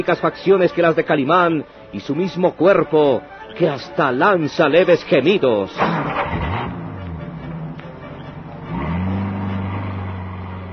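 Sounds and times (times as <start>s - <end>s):
speech: 0.0s - 6.4s
car engine revving and pulling away through the gears: 5.8s - 10.7s.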